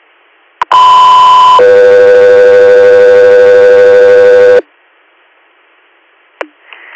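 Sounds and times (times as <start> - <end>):
two-tone dispatch radio paging signal: 0.6 - 4.6.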